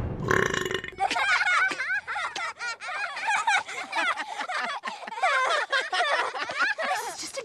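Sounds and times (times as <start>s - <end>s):
short loud burp: 0.2s - 1.2s
laughter: 1.0s - 7.2s.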